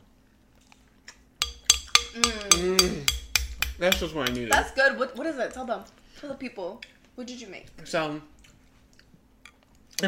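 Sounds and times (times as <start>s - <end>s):
glasses clinking in a toast: 1.4s - 4.6s
speech: 2.2s - 3.2s, 3.8s - 8.3s.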